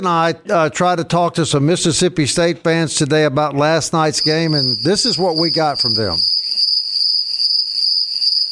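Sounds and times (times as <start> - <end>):
speech: 0.0 - 6.6
shrill cricket chorus trilling: 4.2 - 8.5.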